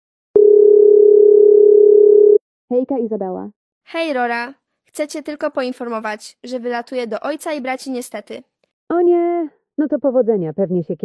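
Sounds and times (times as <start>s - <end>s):
telephone ringing tone while placing a call: 0.4s - 2.4s
speech: 2.7s - 11.0s.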